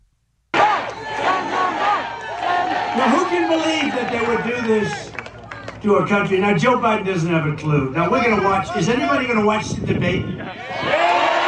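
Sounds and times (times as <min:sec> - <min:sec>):
political rally crowd cheering and applauding: 0:00.6 - 0:05.8, 0:10.6 - 0:11.4
speech: 0:03.5 - 0:05.2, 0:05.8 - 0:11.1.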